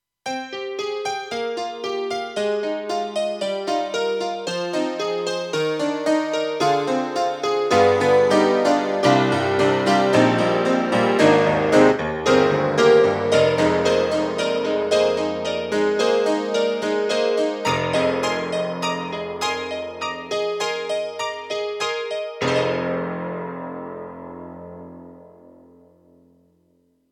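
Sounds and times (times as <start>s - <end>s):
AKAI SG01p honky grand piano: 0.3s - 26.8s.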